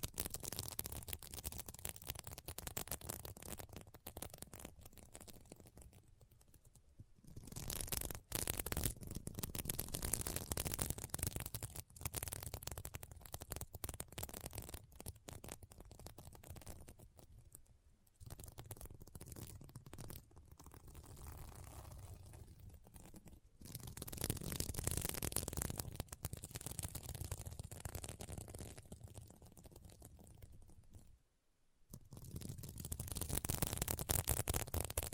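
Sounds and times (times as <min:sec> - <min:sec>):
fingers scratching and brushing across a sequin pillow: 0:00.0 - 0:17.6, 0:18.2 - 0:31.1, 0:31.9 - 0:35.1.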